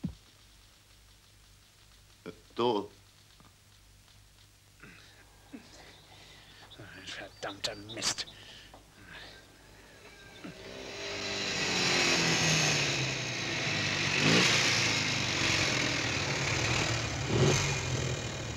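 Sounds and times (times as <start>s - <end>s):
speech: 2.6s - 3.0s, 7.2s - 8.4s
engine of a German car failing to run properly, droning with surges: 9.8s - 18.5s.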